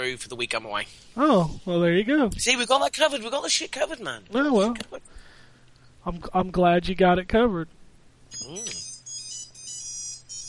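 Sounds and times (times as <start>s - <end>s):
speech: 0.0s - 5.1s, 6.0s - 7.8s, 8.4s - 8.9s
old Nokia-style phone ringtone of bright electronic beeps: 8.3s - 10.4s.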